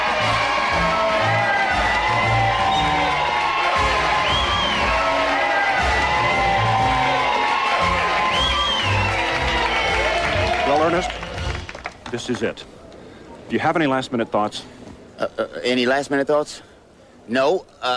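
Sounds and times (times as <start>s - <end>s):
large crowd cheering and whooping: 0.0s - 11.5s
speech: 12.1s - 12.8s, 13.5s - 16.7s, 17.3s - 17.9s.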